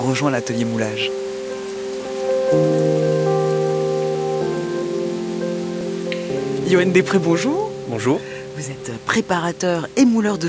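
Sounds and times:
speech: 0.0 - 1.3, 2.5 - 2.8, 6.7 - 10.4
steady rain falling outdoors: 0.0 - 10.4.

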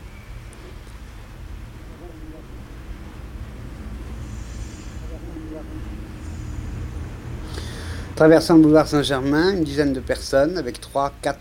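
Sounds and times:
street traffic with cars, taxis, trucks and a van passing: 0.0 - 11.3
faint indistinct voices: 1.8 - 2.8, 4.9 - 6.3
speech: 8.2 - 11.3.

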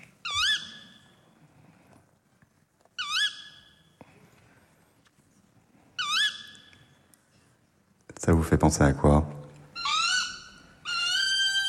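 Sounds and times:
tawny owl hooting: 0.2 - 1.2, 3.0 - 3.9, 5.9 - 7.0, 9.7 - 11.6
speech: 8.2 - 9.3.

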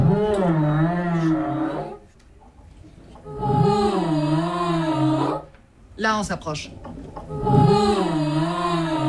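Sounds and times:
humpback whale song underwater: 0.0 - 2.1, 3.0 - 5.5, 6.9 - 9.0
speech: 6.0 - 6.8.

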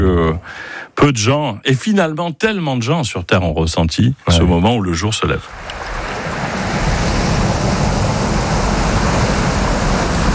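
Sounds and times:
speech: 0.3 - 6.2
ocean waves rolling onto a beach: 5.6 - 10.3.

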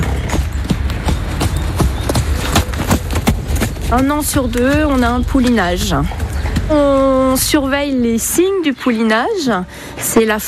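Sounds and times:
horse hooves clip-clopping on a hard surface at stables: 0.0 - 8.6
speech: 3.9 - 10.4.

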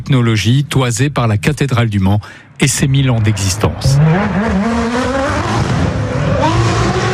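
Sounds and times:
speech: 0.0 - 5.2
car engine roaring and revving hard: 3.0 - 7.1.

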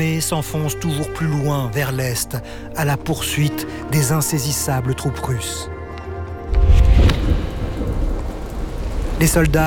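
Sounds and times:
speech: 0.0 - 5.7, 9.2 - 9.6
torrential rain pouring: 6.4 - 9.6
deep rumble of thunder: 6.5 - 9.6.

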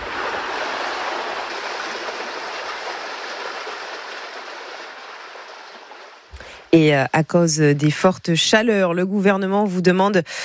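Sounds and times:
river water rushing: 0.0 - 6.7
speech: 6.7 - 10.4.

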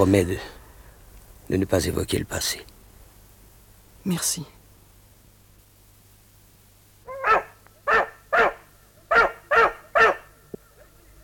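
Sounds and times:
speech: 0.0 - 0.6, 1.5 - 2.7, 4.0 - 4.6
faint low hum: 0.0 - 11.2
dog barking: 7.1 - 10.9.

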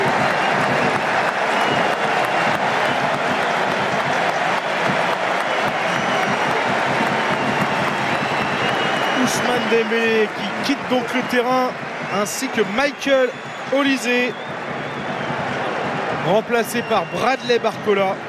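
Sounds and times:
stadium crowd applauding and cheering at a football match: 0.0 - 18.2
speech: 9.7 - 14.6, 16.2 - 18.2.

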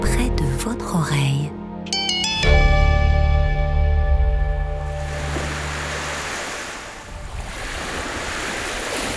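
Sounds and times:
sustained musical chord: 0.1 - 6.2
ocean surf washing onto the shore: 4.9 - 9.1.

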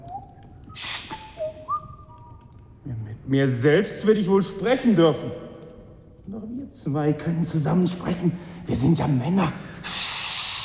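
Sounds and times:
person whistling an imitation of a bird call: 0.0 - 2.2
speech: 2.8 - 5.4, 6.3 - 10.0.

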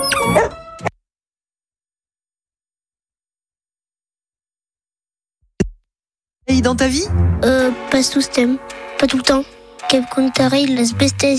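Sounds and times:
big furry pet dog giving a short high bark: 0.0 - 0.6
speech: 6.5 - 11.3.

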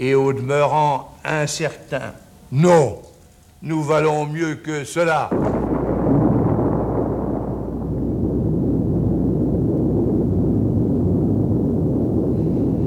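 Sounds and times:
speech: 0.0 - 5.6
simulated nuclear explosion deep heavy rumbling roar: 5.3 - 12.8.

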